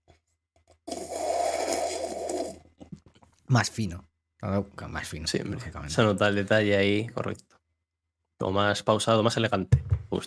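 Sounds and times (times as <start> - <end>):
slurp of a strawberry protein shake drawn through a straw: 0.7 - 3.0
speech: 3.5 - 7.6, 8.4 - 10.2.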